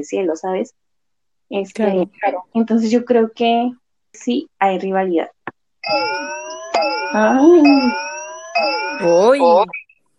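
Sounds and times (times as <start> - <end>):
speech: 0.0 - 0.9, 1.5 - 6.5, 7.1 - 8.0, 8.6 - 9.8
electronic alarm going off with a wavering wail: 5.8 - 9.9.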